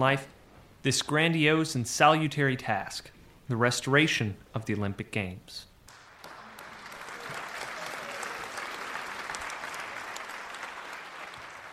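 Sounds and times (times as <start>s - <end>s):
speech: 0.0s - 5.7s
large crowd applauding: 5.9s - 11.7s.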